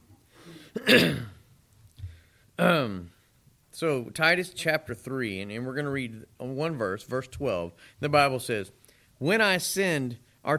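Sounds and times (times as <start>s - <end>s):
raspy throat clearing: 0.7s - 1.4s
voiced gravelly cough: 0.7s - 1.4s
speech: 0.8s - 1.3s, 2.6s - 3.2s, 3.8s - 10.5s.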